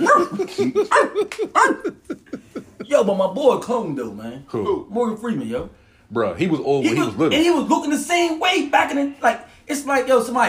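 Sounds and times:
person imitating a dog with yappy barks: 0.0 - 2.0
laughter: 0.0 - 3.3
speech: 0.6 - 1.8, 3.0 - 10.4.

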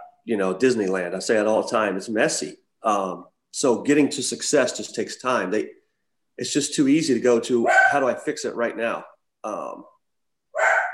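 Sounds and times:
speech: 0.2 - 5.8, 6.4 - 9.9
dog barking: 7.6 - 8.1, 10.6 - 10.9.

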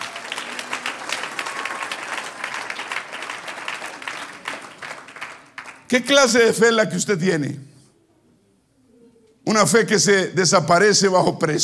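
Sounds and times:
audience applauding: 0.0 - 6.5
speech: 5.9 - 7.7, 9.5 - 11.6.

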